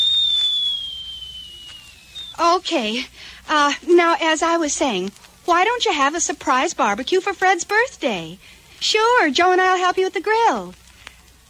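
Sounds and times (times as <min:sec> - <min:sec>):
teakettle whistling on the stove: 0:00.0 - 0:02.6
speech: 0:02.4 - 0:10.8.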